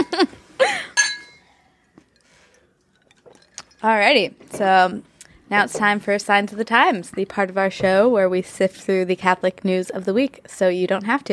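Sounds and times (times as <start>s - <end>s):
glasses clinking in a toast: 0.6s - 3.9s
speech: 3.8s - 11.3s.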